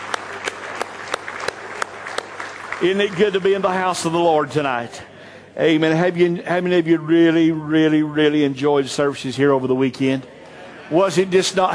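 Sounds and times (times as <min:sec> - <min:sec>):
church congregation clapping hands in a steady rhythm: 0:00.0 - 0:03.7
church congregation applause: 0:00.0 - 0:04.4
speech: 0:02.8 - 0:11.7.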